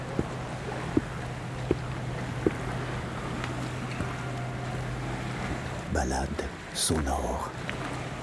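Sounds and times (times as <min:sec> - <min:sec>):
constant low hum: 0:00.0 - 0:06.8
wind and water wash on the Estérel coast road between sea and mountains: 0:00.0 - 0:08.2
faint knocks: 0:00.1 - 0:02.8
speech: 0:06.0 - 0:07.8.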